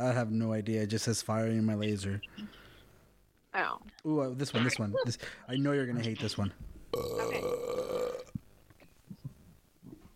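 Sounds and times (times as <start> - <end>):
speech: 0.0 - 2.6, 3.6 - 7.6
loud burp: 6.9 - 8.4.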